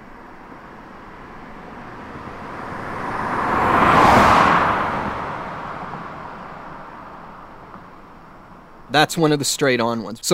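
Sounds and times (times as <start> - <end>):
car passing a stationary microphone: 0.0 - 8.9
speech: 8.9 - 10.3.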